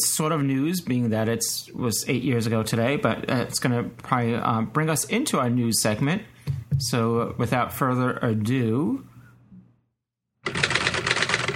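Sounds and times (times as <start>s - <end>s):
speech: 0.2s - 9.1s
old typewriter typing: 10.4s - 11.5s.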